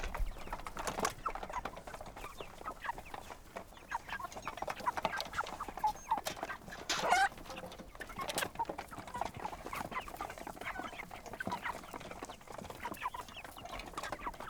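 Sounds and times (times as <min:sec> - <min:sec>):
chickens clucking softly while feeding: 0:00.0 - 0:14.4
chickens pecking and rustling while feeding on a goat farm: 0:00.0 - 0:14.4.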